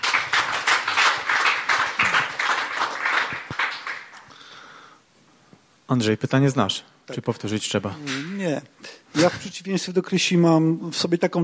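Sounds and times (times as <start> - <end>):
audience applauding: 0.0 - 4.4
speech: 5.9 - 11.4.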